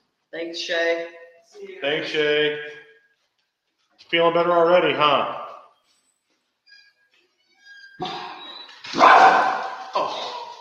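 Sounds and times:
speech: 0.3 - 2.8, 4.0 - 5.4
guard dog barking: 8.0 - 10.5.

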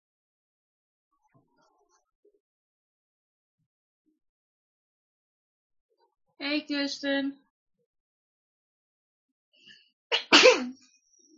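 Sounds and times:
speech: 6.4 - 7.4
sneeze: 10.1 - 10.8.

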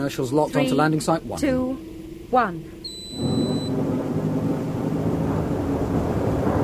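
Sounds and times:
speech: 0.0 - 3.6
brief thin tone: 0.0 - 4.7
spacecraft shuttle braking burn rumbling and buffeting before atmospheric entry: 0.0 - 6.6.

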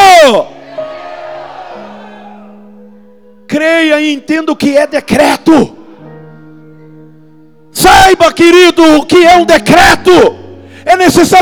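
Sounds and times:
audience shouting in response to a preacher: 0.0 - 2.6
speech: 0.3 - 0.6, 3.8 - 5.8, 7.8 - 11.4.

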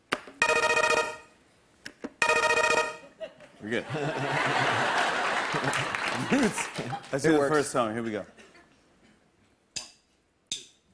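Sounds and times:
game show buzzer being tested: 0.4 - 1.2, 2.2 - 3.0
laughter: 3.2 - 7.3
speech: 3.6 - 8.4.

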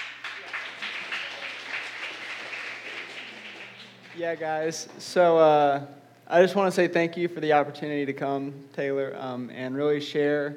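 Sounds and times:
audience applause in a church: 0.0 - 4.7
speech: 4.2 - 10.5.

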